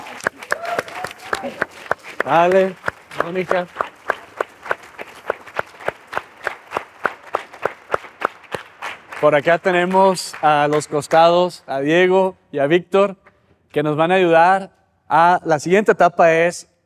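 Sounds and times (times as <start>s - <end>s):
live audience clapping in unison: 0.0s - 11.6s
speech: 2.2s - 3.8s, 9.2s - 16.7s.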